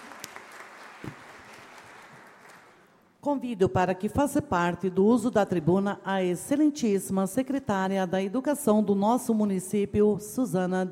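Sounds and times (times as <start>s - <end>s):
crowd applauding: 0.0s - 3.0s
speech: 3.2s - 10.9s.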